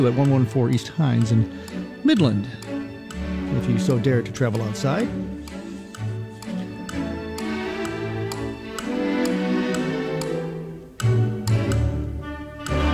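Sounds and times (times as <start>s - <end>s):
speech: 0.0s - 2.6s, 3.5s - 5.4s
clock ticking: 0.0s - 12.9s
lively orchestral music: 0.0s - 12.9s.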